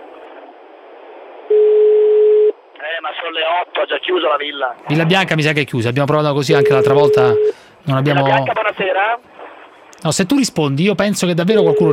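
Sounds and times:
telephone ringback tone on an outgoing call to a villa in Bari: 0:01.5 - 0:02.5, 0:06.5 - 0:07.6, 0:11.6 - 0:11.9
speech: 0:03.0 - 0:09.3, 0:10.0 - 0:11.9.

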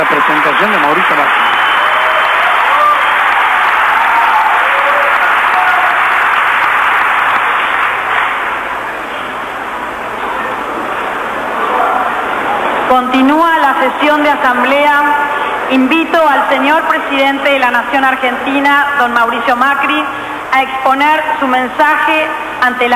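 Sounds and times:
speech: 0:00.0 - 0:01.6, 0:12.9 - 0:22.9
audience applause at a session of the Legislative Assembly in Argentina: 0:00.0 - 0:13.0.

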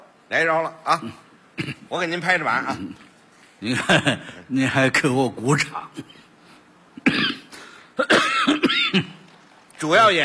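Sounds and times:
speech: 0:00.3 - 0:06.2, 0:07.0 - 0:07.4, 0:09.8 - 0:10.2
performer clearing his throat on stage before singing: 0:07.0 - 0:09.2
performer coughing on stage before singing: 0:07.0 - 0:09.2.

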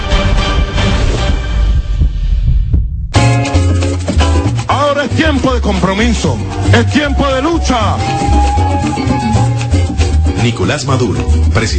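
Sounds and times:
heartbeat sound effect: 0:00.0 - 0:03.3
loud, dense tonal backing: 0:00.0 - 0:11.7
speech: 0:05.6 - 0:09.4, 0:10.4 - 0:11.7.

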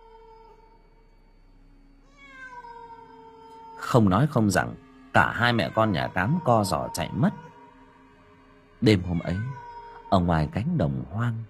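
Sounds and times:
cat meowing: 0:00.0 - 0:00.7, 0:02.0 - 0:07.6, 0:08.8 - 0:10.6
low steady hum: 0:00.0 - 0:09.7
speech: 0:03.9 - 0:07.5, 0:08.8 - 0:11.4.

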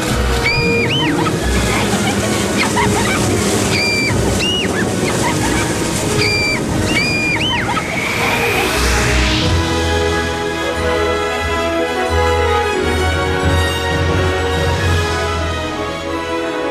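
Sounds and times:
laughter: 0:00.0 - 0:09.5
rushing river water: 0:00.0 - 0:16.6
high squeaking chirps: 0:03.6 - 0:08.6.

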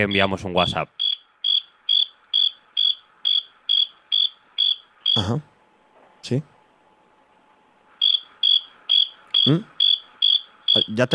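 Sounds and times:
speech: 0:00.0 - 0:01.0, 0:05.2 - 0:05.5, 0:06.2 - 0:06.5, 0:09.5 - 0:09.7, 0:10.8 - 0:11.1
cricket chirping: 0:01.0 - 0:05.3, 0:08.0 - 0:11.1.

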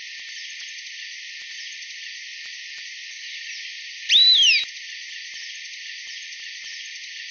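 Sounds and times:
Long-tailed Tyrant Colonia colonus uttering a clear whistled note: 0:04.1 - 0:04.7.

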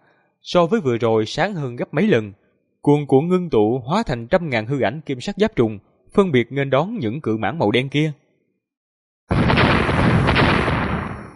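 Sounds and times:
speech: 0:00.4 - 0:08.2
dense crackling bursts: 0:09.3 - 0:11.3
repeated loud explosions in a fantasy battle: 0:09.3 - 0:11.3.

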